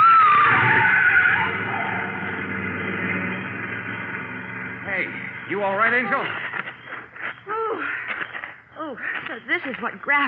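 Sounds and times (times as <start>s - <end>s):
baby blue convertible engine roaring: 0.0s - 6.9s
convertible tires skidding and squealing: 0.0s - 7.4s
speech: 5.6s - 6.4s, 8.9s - 10.2s.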